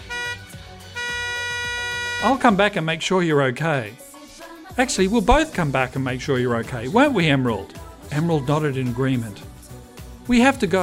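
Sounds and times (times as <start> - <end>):
bus horn tooting: 0.0 - 2.8
speech: 2.2 - 4.0, 4.8 - 9.5, 10.3 - 10.8.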